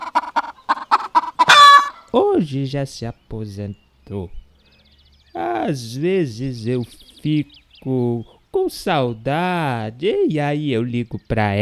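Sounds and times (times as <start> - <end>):
hen clucking: 0.0 - 2.3
speech: 2.1 - 4.4, 5.4 - 11.6.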